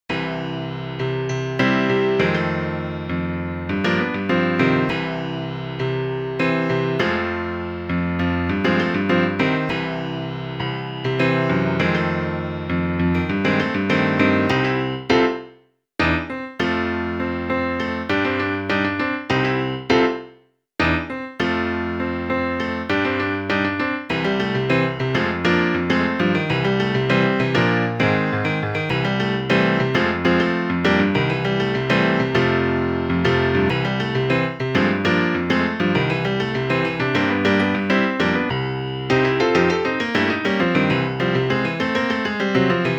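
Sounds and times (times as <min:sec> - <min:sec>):
piano blues music: 0:00.1 - 0:42.9.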